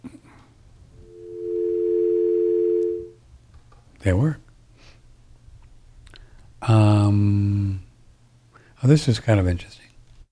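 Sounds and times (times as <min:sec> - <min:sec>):
telephone dial tone: 0:01.1 - 0:03.1
speech: 0:04.0 - 0:04.4, 0:06.7 - 0:07.7, 0:08.8 - 0:09.8.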